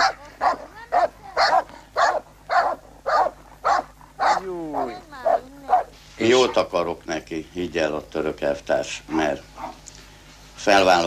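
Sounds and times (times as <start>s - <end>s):
vicious dog barking aggressively: 0.0s - 6.7s, 9.6s - 9.8s
speech: 6.2s - 9.5s, 10.6s - 11.0s.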